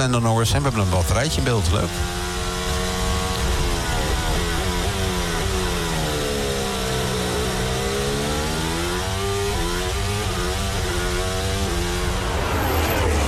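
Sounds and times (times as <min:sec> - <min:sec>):
speech: 0:00.0 - 0:02.3
Formula 1 car onboard engine whining during a sprint race: 0:00.0 - 0:13.2.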